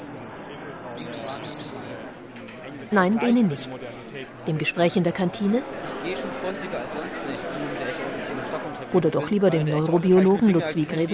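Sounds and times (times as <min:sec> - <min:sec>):
birds singing in a park: 0:00.0 - 0:02.0
murmuring noise: 0:00.0 - 0:11.1
speech: 0:02.9 - 0:11.1.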